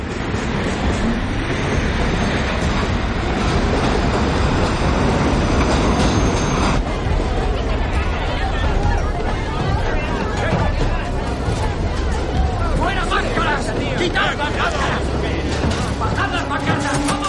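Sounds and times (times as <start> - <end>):
subway train carriages moving along the tracks: 0.0 - 17.2
murmuring voices: 6.8 - 17.2.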